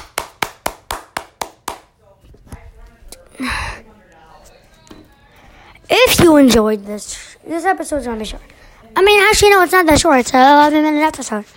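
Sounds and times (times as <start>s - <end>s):
hand claps: 0.0s - 1.9s
speech: 6.2s - 11.5s.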